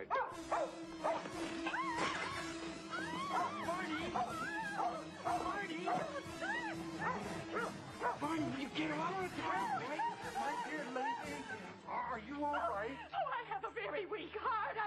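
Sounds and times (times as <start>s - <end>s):
speech: 0.0s - 2.1s, 5.3s - 14.8s
dog barking and yipping inside a bank: 0.0s - 8.2s
laughter: 1.6s - 14.5s.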